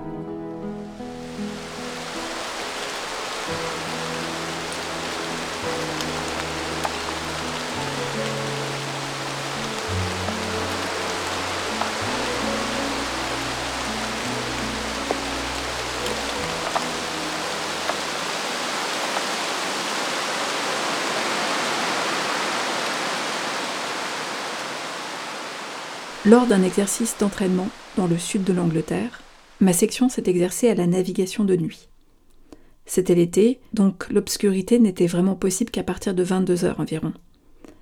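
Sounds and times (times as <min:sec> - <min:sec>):
heavy rain: 0:01.2 - 0:29.6
speech: 0:26.3 - 0:31.9, 0:32.9 - 0:37.2.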